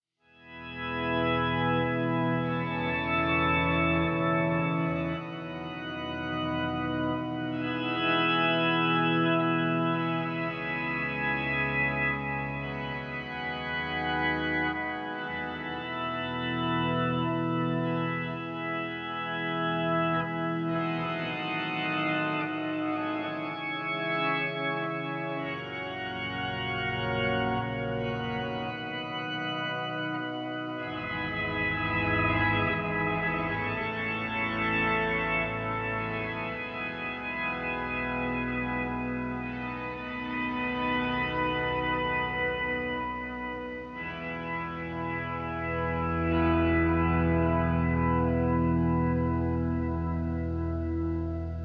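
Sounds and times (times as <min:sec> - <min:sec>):
guitar through octave pedal sounding like cathedral organ: 0:00.2 - 0:51.6.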